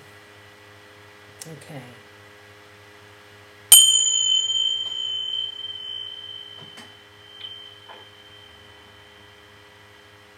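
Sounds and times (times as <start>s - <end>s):
speech: 1.4s - 2.1s
single bell struck once: 3.7s - 8.8s.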